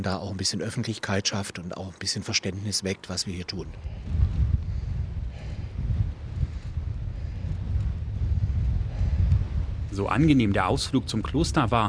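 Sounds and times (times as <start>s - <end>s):
speech: 0.0s - 4.5s, 9.9s - 11.8s
strong icy wind blowing outdoors buffeting the microphone: 3.5s - 11.8s.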